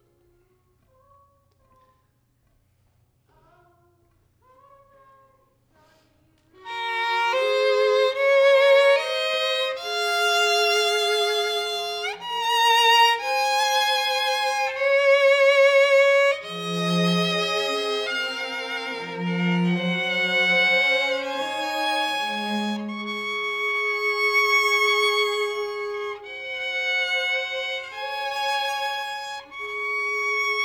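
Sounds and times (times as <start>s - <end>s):
violin: 6.6s - 30.6s.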